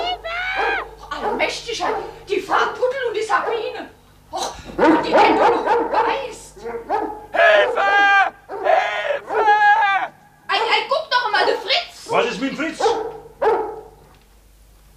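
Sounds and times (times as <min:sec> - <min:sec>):
rabid dog barking and yelping: 0:00.0 - 0:03.8, 0:04.8 - 0:14.0.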